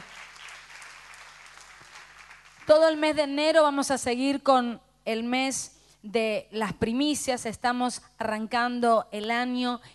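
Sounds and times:
audience applauding: 0:00.0 - 0:02.7
speech: 0:02.7 - 0:09.9.

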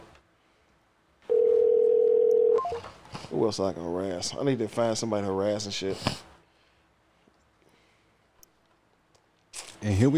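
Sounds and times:
telephone ringback tone for an unanswered call: 0:01.3 - 0:02.8
speech: 0:03.3 - 0:06.3, 0:09.9 - 0:10.1.

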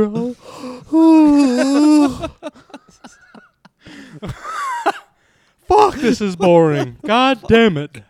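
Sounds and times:
speech: 0:00.0 - 0:00.2, 0:00.9 - 0:01.2, 0:06.1 - 0:08.0
person yawning: 0:00.1 - 0:02.4
laughter: 0:00.9 - 0:08.0.

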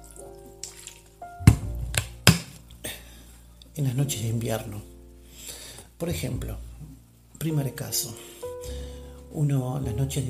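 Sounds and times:
tea bag lifted out of heated tea dripping: 0:00.0 - 0:03.8
dull squishy knocks: 0:00.6 - 0:02.6
speech: 0:03.8 - 0:04.9, 0:06.0 - 0:06.7, 0:07.4 - 0:08.3, 0:09.3 - 0:10.2.

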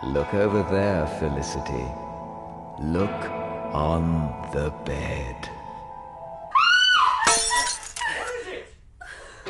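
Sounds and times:
speech: 0:00.0 - 0:02.1, 0:02.8 - 0:05.6
scattered tinkling of glass: 0:07.2 - 0:08.2
dropped glass shattering: 0:07.2 - 0:08.3.

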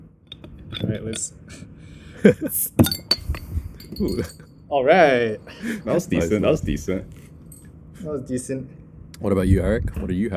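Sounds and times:
speech: 0:00.9 - 0:03.1, 0:03.9 - 0:07.2, 0:08.0 - 0:10.3
cold beer bottle clinks and knocks: 0:02.7 - 0:04.5.

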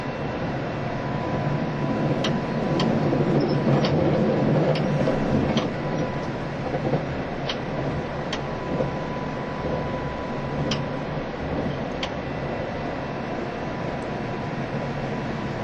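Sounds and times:
JR East tilting express train running on the track: 0:00.0 - 0:15.6
train wheels clicking and knocking: 0:02.1 - 0:09.0.

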